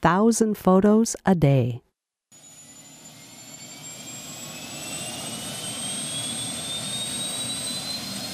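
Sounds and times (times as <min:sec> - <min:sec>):
speech: 0:00.0 - 0:01.9
helicopter turbine whine heard from inside the cabin: 0:02.4 - 0:08.3.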